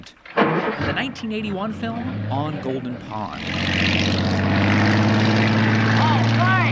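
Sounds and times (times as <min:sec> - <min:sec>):
speech: 0:00.0 - 0:04.7
vintage wooden Chris Craft motorboat engine running fast: 0:01.7 - 0:06.7.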